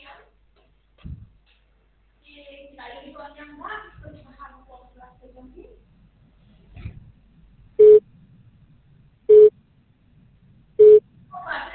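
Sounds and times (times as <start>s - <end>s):
telephone busy tone beeps: 7.8s - 8.0s, 9.3s - 9.5s, 10.8s - 11.0s.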